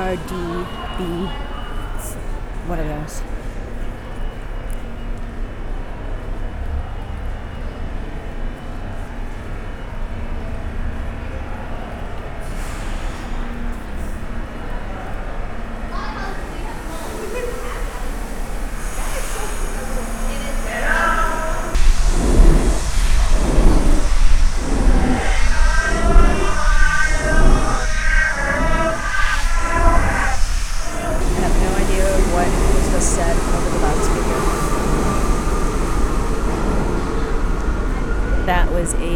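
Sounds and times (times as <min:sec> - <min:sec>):
voices: 0:00.0 - 0:03.3, 0:16.5 - 0:39.1
subway train rumbling past a station platform: 0:00.0 - 0:39.1
speech: 0:00.1 - 0:03.5
faint screeching: 0:20.7 - 0:37.0.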